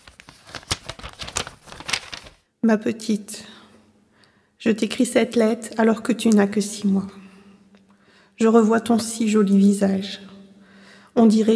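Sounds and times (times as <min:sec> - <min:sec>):
envelope being torn open carefully: 0:00.0 - 0:02.4
speech: 0:02.6 - 0:03.6, 0:04.6 - 0:07.2, 0:08.4 - 0:10.3, 0:11.2 - 0:11.5.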